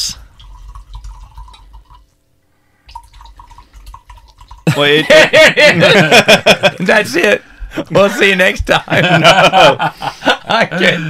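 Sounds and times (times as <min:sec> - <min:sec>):
whiskey glugging and splashing poured into a glass: 0:00.2 - 0:02.2, 0:02.8 - 0:04.7
laughter: 0:04.7 - 0:11.0
speech: 0:04.8 - 0:11.0.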